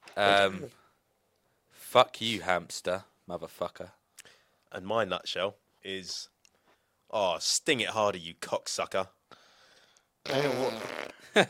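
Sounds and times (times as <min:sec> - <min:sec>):
speech: 0:00.2 - 0:00.8, 0:01.9 - 0:04.0, 0:04.7 - 0:06.3, 0:07.1 - 0:09.2, 0:10.2 - 0:11.4
raspberry blown with the lips imitating a fart: 0:10.2 - 0:11.4.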